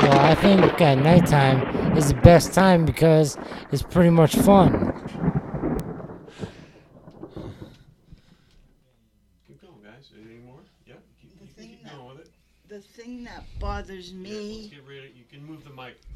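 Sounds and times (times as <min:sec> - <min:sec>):
thunder rumbling during a thunderstorm: 0:00.0 - 0:08.5
speech: 0:00.3 - 0:04.9, 0:12.8 - 0:16.1.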